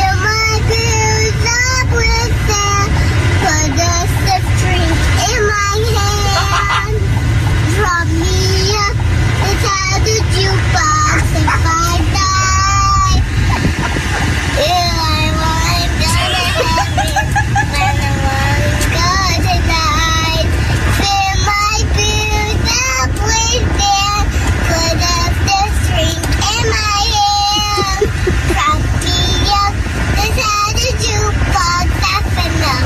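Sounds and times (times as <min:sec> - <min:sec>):
young child singing the national anthem in a moving car: 0:00.0 - 0:07.1, 0:07.7 - 0:13.4, 0:14.5 - 0:32.8
car engine and road rumble: 0:00.0 - 0:32.8
laughter: 0:06.0 - 0:07.6, 0:11.1 - 0:12.0, 0:13.3 - 0:14.4, 0:16.0 - 0:18.5, 0:27.5 - 0:28.6.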